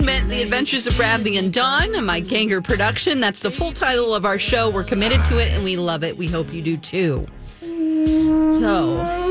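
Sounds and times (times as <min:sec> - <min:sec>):
speech: 0:00.2 - 0:07.4, 0:08.0 - 0:09.2
ghost howling sound effect: 0:04.5 - 0:05.7.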